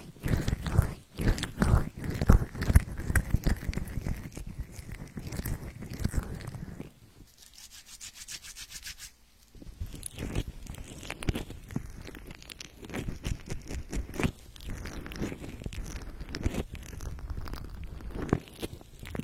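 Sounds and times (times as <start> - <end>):
ear massage crackling and rubbing: 0.0 - 19.2.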